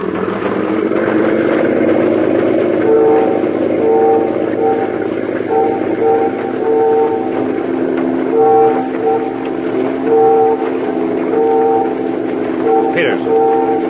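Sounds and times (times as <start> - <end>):
constant low engine rumble: 0.0 - 13.8
ferry steam whistle signaling: 2.8 - 13.8.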